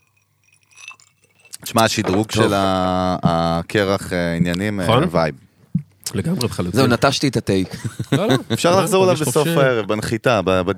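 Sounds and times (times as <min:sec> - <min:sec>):
glasses clinking in a toast: 0:00.0 - 0:02.8
speech: 0:01.7 - 0:05.4, 0:06.1 - 0:10.7
laughter: 0:07.6 - 0:10.0.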